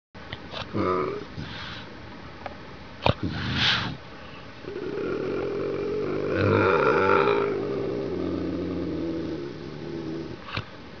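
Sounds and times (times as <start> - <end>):
bobcat growl: 0.6 - 1.8, 4.6 - 10.6.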